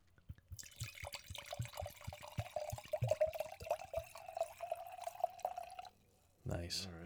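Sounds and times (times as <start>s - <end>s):
wine pouring into glasses: 0.4s - 6.1s
glasses clinking: 2.2s - 5.9s.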